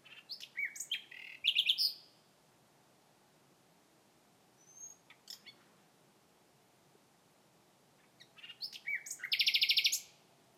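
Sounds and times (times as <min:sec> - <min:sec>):
common nightingale singing: 0:00.0 - 0:02.2, 0:04.6 - 0:05.6, 0:08.0 - 0:10.2.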